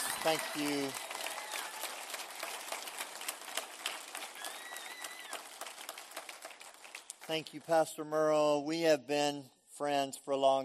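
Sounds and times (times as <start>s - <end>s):
whoops and cheers: 0.0s - 2.1s, 4.3s - 5.6s
crowd applauding: 0.0s - 7.6s
speech: 0.2s - 1.1s, 7.3s - 10.6s.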